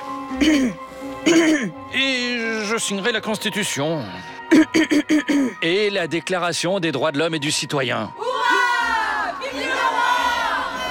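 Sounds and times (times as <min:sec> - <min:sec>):
speech: 0:00.4 - 0:08.6
many voices shouting and whooping together: 0:08.2 - 0:10.9
loud crowd cheering with joy: 0:08.3 - 0:10.9.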